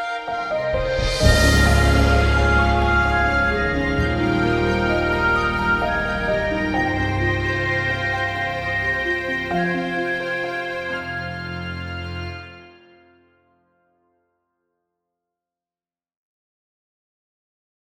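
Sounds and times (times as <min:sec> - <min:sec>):
logo music: 0:00.1 - 0:12.8.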